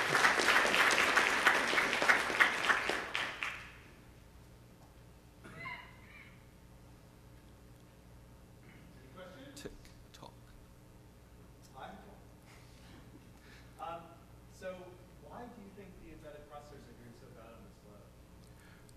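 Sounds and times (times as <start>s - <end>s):
audience applause: 0.0s - 3.8s.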